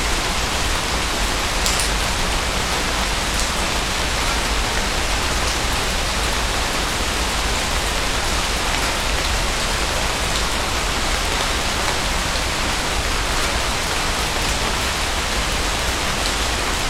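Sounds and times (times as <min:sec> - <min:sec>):
rain falling steadily in a bamboo grove: 0:00.0 - 0:16.8.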